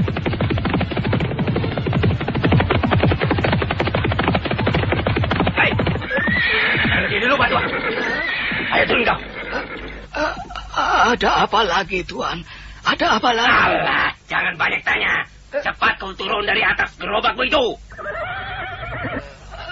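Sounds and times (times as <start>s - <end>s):
horses galloping on a stony road: 0.0s - 9.2s
horses neighing and whinnying: 5.6s - 10.7s, 17.9s - 19.6s
speech: 8.8s - 17.8s.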